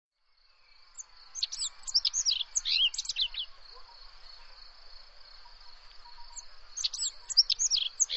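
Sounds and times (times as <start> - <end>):
bird singing high chirps and trills: 1.0 - 3.6, 6.1 - 8.1.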